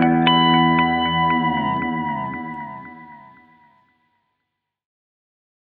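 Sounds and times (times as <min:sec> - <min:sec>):
tape delay effect: 0:00.2 - 0:03.6.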